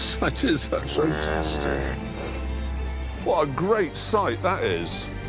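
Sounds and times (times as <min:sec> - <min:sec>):
speech: 0:00.2 - 0:02.1, 0:03.3 - 0:05.2
cow mooing: 0:00.9 - 0:02.0.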